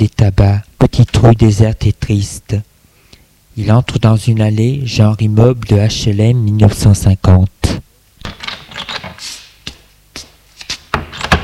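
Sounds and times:
speech: 0:00.0 - 0:02.7, 0:03.6 - 0:08.4
apartment door opening in an apartment building: 0:10.9 - 0:11.4
door latch and handle clicking: 0:11.0 - 0:11.4.

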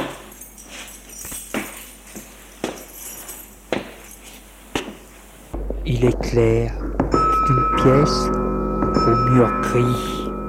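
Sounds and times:
keyring jingling: 0:00.1 - 0:04.4
speech: 0:05.9 - 0:06.8, 0:07.5 - 0:08.4, 0:09.0 - 0:10.2.

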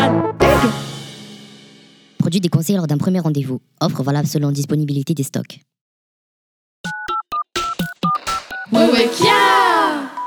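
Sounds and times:
speech: 0:02.3 - 0:05.7, 0:08.8 - 0:10.1
telephone keypad dialing tones: 0:06.9 - 0:08.8.

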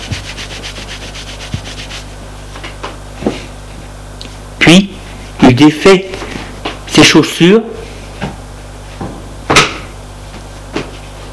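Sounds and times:
towel soaked with mint alcohol rubbed over a person's face and arms: 0:00.0 - 0:02.2
speech: 0:05.6 - 0:06.2, 0:07.0 - 0:07.8.

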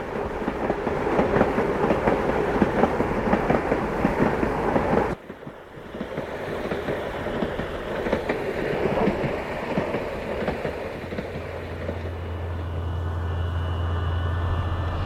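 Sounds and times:
train rumbling on rails: 0:00.0 - 0:15.0.

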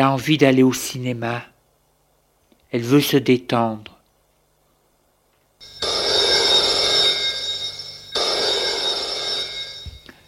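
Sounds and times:
speech: 0:00.0 - 0:01.5, 0:02.7 - 0:03.9
telephone ringing: 0:05.6 - 0:10.2.

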